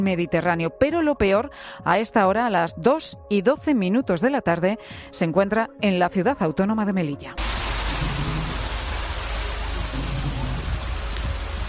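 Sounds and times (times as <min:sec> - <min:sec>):
speech: 0:00.0 - 0:08.1
faint low rumble: 0:07.4 - 0:11.6
heavy rain pouring down in Melilla: 0:07.4 - 0:11.6.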